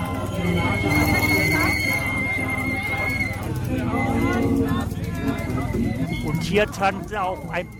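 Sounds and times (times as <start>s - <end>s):
babble of many overlapping voices of a crowd in an outdoor street: 0.0s - 7.7s
speech: 0.5s - 2.5s, 3.7s - 7.7s.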